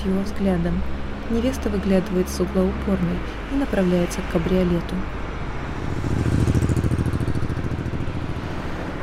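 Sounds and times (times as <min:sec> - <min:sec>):
speech: 0:00.0 - 0:05.2
police officer's motorcycle riding away: 0:05.6 - 0:08.9.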